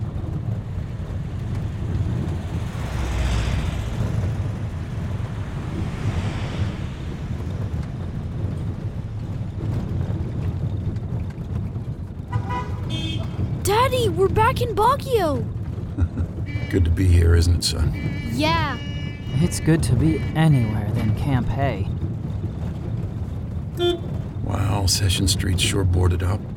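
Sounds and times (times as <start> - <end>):
trucks carrying people rumbling with low engine drone and road noise: 0.0 - 26.5
brief truck horn toot: 12.3 - 13.5, 16.4 - 21.3, 23.8 - 24.2
speech: 13.9 - 15.6, 16.7 - 21.9, 24.8 - 26.4.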